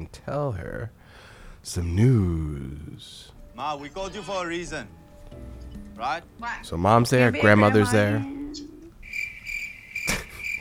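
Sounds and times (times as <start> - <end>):
speech: 0.0 - 8.7
crickets chirping: 9.0 - 10.5.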